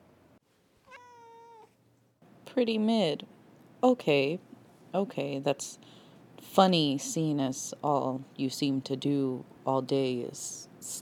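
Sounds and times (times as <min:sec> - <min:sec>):
cat meowing: 0:00.8 - 0:01.8
speech: 0:02.6 - 0:11.0.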